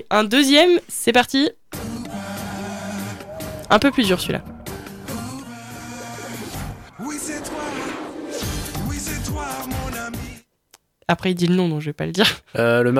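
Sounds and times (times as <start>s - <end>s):
speech: 0.0s - 1.6s, 3.7s - 4.5s, 11.1s - 12.9s
sliding bleating voice-like calls: 1.8s - 8.6s
bouncy cartoon theme song with a steady beat: 1.9s - 10.0s
laughter: 2.0s - 8.0s.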